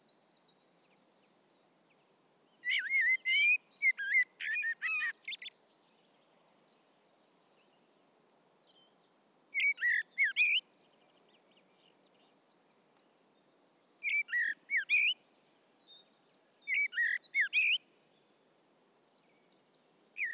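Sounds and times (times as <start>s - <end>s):
low constant hiss: 0.0s - 20.3s
common blackbird Turdus merula singing: 2.6s - 5.6s, 9.5s - 11.9s, 14.0s - 15.2s, 15.8s - 17.8s.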